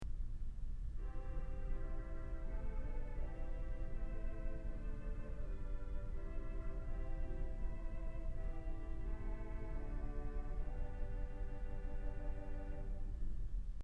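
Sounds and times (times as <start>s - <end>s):
pipe organ playing on the swell Vox Humana stop: 0.9s - 13.6s.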